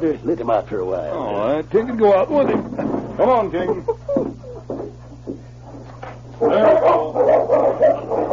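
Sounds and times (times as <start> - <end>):
speech: 0.0 - 4.0
steady low hum: 0.0 - 8.3
dogs barking and yipping: 5.1 - 8.3.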